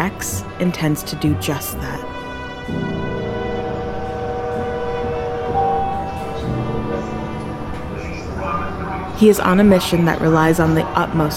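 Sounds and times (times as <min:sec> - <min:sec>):
speech: 0:00.0 - 0:03.2, 0:09.2 - 0:11.3
sustained droning horn-like tones: 0:01.7 - 0:08.9
passenger train with a powerful engine rolling along the rails: 0:02.7 - 0:09.0.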